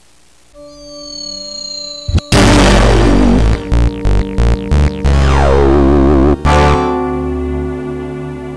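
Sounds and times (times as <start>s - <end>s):
logo intro jingle: 0.6s - 7.8s.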